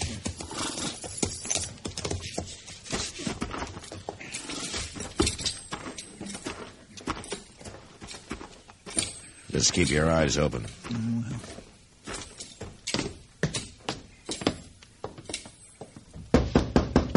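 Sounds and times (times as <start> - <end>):
horses snorting: 0.0 - 8.5
horse hooves clip-clopping: 0.0 - 16.6
speech: 9.6 - 11.6.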